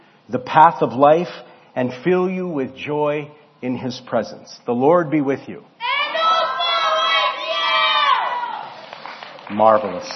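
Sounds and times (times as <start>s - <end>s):
speech: 0.3s - 5.8s, 9.5s - 10.1s
church audience shouting and cheering at a Sunday service: 5.8s - 10.0s.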